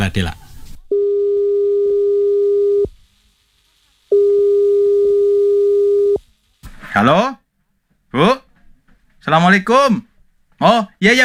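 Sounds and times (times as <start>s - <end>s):
speech: 0.0s - 0.4s, 7.0s - 7.4s, 8.1s - 8.4s, 9.2s - 11.2s
telephone ringing tone while placing a call: 0.9s - 2.9s, 4.1s - 6.2s.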